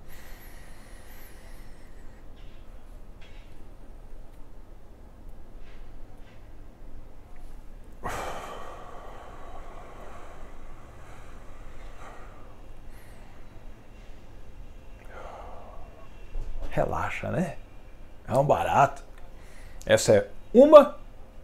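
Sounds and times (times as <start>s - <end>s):
slow deep breaths inhaled and exhaled: 0.0s - 3.0s, 7.4s - 16.7s, 19.2s - 19.8s
speech: 16.8s - 17.6s, 18.3s - 19.0s, 19.9s - 21.0s.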